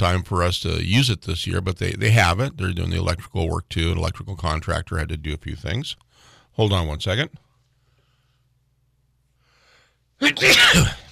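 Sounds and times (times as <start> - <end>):
speech: 0.0 - 6.0, 6.6 - 7.4, 10.2 - 11.0
person sneezing at a microphone: 10.2 - 11.1.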